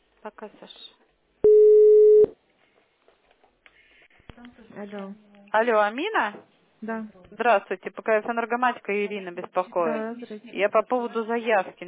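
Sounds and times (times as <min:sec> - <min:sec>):
speech: 0:00.2 - 0:01.0, 0:04.4 - 0:11.8
telephone connecting beep: 0:01.4 - 0:02.3.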